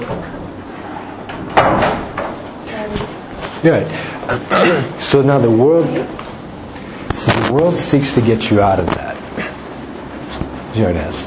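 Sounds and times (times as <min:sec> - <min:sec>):
door pushed shut with a soft thud: 0:01.4 - 0:02.4
speech: 0:03.6 - 0:06.3, 0:07.3 - 0:09.1, 0:10.8 - 0:11.2.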